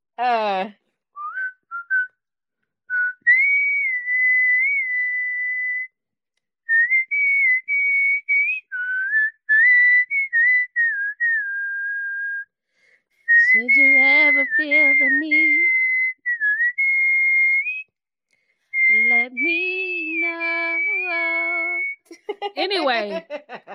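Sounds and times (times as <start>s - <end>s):
speech: 0.2s - 0.8s, 23.0s - 23.5s
person whistling a melody: 1.2s - 2.2s, 2.9s - 6.0s, 6.7s - 12.6s, 13.2s - 17.9s, 18.7s - 22.1s
laughter: 22.1s - 23.7s.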